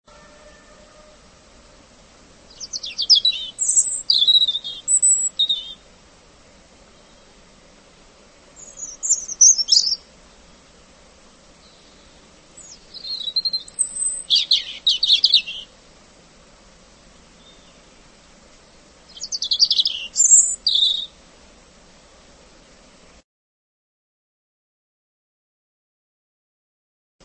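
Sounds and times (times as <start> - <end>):
robin singing: 2.4 - 5.9, 6.8 - 7.4, 8.6 - 10.7, 11.6 - 15.8, 17.2 - 18.1, 19.0 - 21.2.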